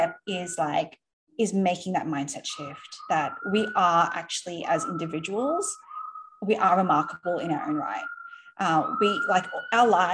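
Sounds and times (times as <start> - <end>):
speech: 0.0 - 10.1
emergency vehicle sirens: 2.5 - 10.1.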